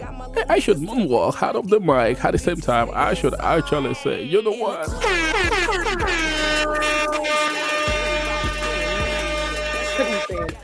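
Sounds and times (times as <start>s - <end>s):
speech: 0.3s - 7.8s
air horn sound effect honks: 4.9s - 10.5s.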